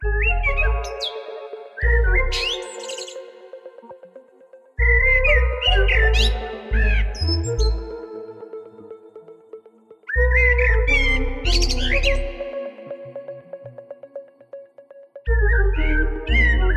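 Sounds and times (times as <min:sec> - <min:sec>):
common blackbird singing: 0:00.0 - 0:03.3, 0:04.8 - 0:07.9, 0:10.1 - 0:12.4, 0:15.3 - 0:16.7
loud electronic track with pulsing bass and synth chords: 0:00.0 - 0:16.7
sustained synth chords: 0:00.0 - 0:16.7.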